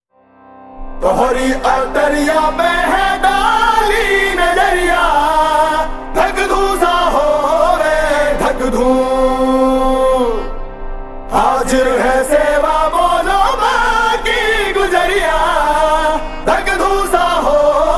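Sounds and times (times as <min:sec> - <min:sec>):
slowed reverb music: 0:00.1 - 0:17.9.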